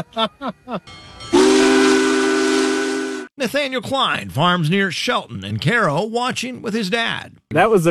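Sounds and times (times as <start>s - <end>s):
speech: 0.0s - 2.0s, 3.4s - 7.9s
steam locomotive whistle as the train passes: 1.3s - 3.3s.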